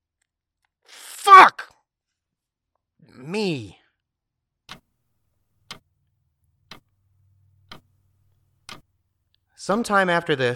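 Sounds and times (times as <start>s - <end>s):
speech: 3.2s - 3.8s, 9.6s - 10.5s
wall clock ticking: 5.6s - 8.9s.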